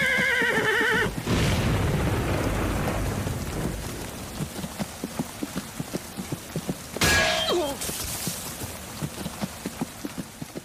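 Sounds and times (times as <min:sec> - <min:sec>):
horse whinnying: 0:00.0 - 0:01.2
horse hooves clip-clopping: 0:00.0 - 0:01.3, 0:02.8 - 0:10.6
heavy rain: 0:00.0 - 0:10.6
thunder rumbling: 0:01.1 - 0:04.8.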